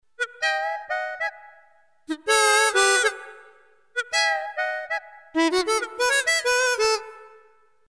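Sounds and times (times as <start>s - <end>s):
harmonica on a Roland JV2080 synthesizer: 0.2s - 7.6s.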